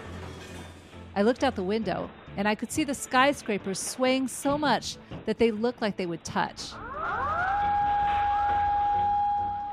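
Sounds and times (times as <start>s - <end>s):
speech: 1.2s - 6.8s
sirens wailing: 6.7s - 9.7s.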